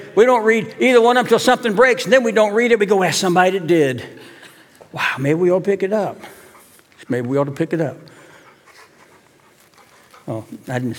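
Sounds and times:
speech: 0:00.2 - 0:04.3, 0:04.9 - 0:06.4, 0:07.0 - 0:08.2, 0:10.3 - 0:10.9
dog panting: 0:06.2 - 0:07.0, 0:08.0 - 0:10.9.

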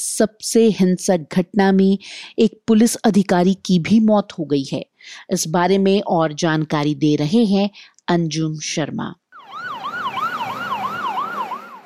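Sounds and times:
speech: 0:00.0 - 0:09.2
police siren wailing: 0:09.4 - 0:11.8.

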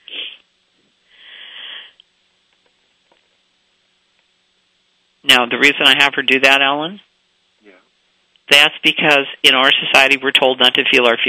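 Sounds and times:
deep breath drawn in and held: 0:01.1 - 0:02.0
sharp sniffing inhale: 0:01.1 - 0:02.0
speech: 0:05.3 - 0:07.1, 0:08.5 - 0:11.2.

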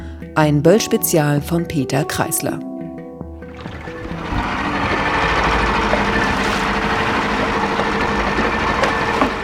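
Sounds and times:
speech: 0:00.4 - 0:02.7
small steel motorboat engine droning: 0:03.3 - 0:09.4
constant hiss of rushing water: 0:03.5 - 0:09.4.

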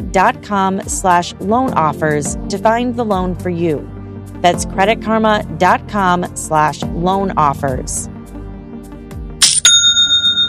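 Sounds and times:
speech: 0:00.0 - 0:08.1
bright, clear bell ding with sustained high tone: 0:09.4 - 0:10.4
online store new sale notification chime: 0:09.4 - 0:10.4.

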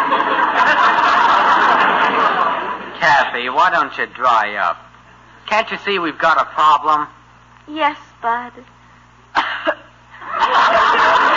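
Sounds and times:
laughter: 0:00.0 - 0:03.5, 0:09.7 - 0:11.3
speech: 0:03.5 - 0:04.9, 0:05.5 - 0:08.8
person deliberately fake coughing: 0:09.4 - 0:09.9.

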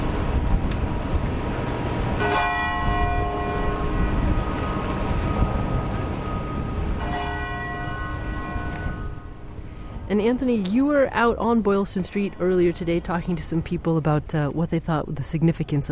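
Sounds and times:
outdoor city noise and traffic rumble: 0:00.0 - 0:15.9
church bells tolling: 0:01.0 - 0:10.1
speech: 0:10.1 - 0:15.9.

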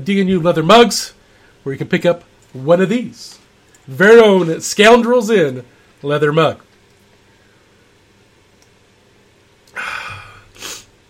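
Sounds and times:
speech: 0:00.0 - 0:06.7
loud sneeze with breathy spray: 0:09.8 - 0:11.0
sharp blast of air through the nose: 0:09.8 - 0:11.0.

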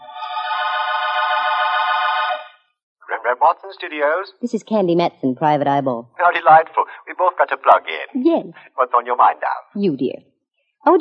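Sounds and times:
telephone ringing with a long steady buzzing ring: 0:00.0 - 0:02.6
speech: 0:03.4 - 0:10.9.

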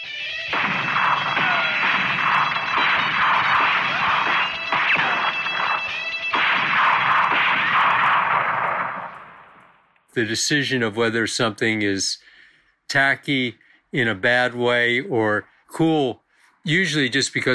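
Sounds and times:
gunshot sound effect cracks: 0:00.5 - 0:09.8
speech: 0:10.2 - 0:12.3, 0:12.9 - 0:17.5.

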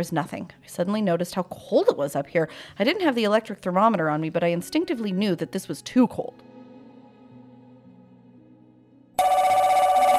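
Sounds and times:
speech: 0:00.0 - 0:06.5
telephone bell ringing: 0:09.2 - 0:10.1.

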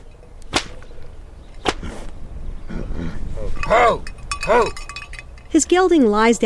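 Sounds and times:
long hand-woven whip cracking in air: 0:00.5 - 0:00.9, 0:01.6 - 0:02.0
speech: 0:03.0 - 0:04.8, 0:05.6 - 0:06.4.

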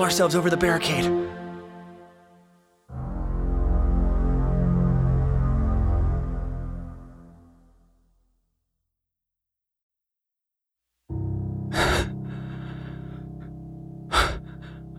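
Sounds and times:
speech: 0:00.0 - 0:01.4
loud low droning sound: 0:02.9 - 0:08.0
person gasping for breath after being winded: 0:11.7 - 0:14.9.

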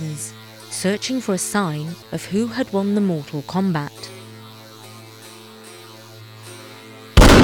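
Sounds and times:
faint steady electric buzz: 0:00.0 - 0:07.4
speech: 0:00.2 - 0:04.2
loud explosive bang sound effect: 0:07.2 - 0:07.4.

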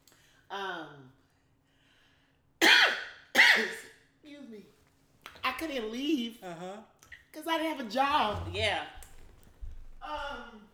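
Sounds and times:
harsh cough: 0:02.6 - 0:03.9
speech: 0:05.6 - 0:09.0, 0:10.1 - 0:10.6.

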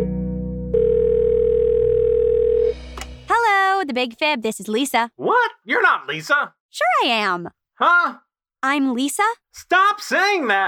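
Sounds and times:
telephone ringing with an incoming call: 0:00.7 - 0:02.8
speech: 0:03.9 - 0:10.6.

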